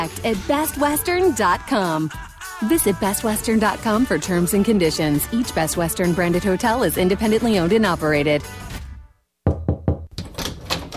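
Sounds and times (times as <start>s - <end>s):
speech: 0.0s - 8.7s
knocking on a door: 9.4s - 10.9s.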